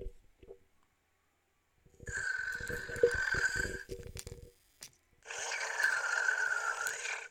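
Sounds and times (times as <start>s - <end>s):
small toy robot making buzzy electronic snoring sounds: 2.1s - 3.9s, 5.3s - 7.2s.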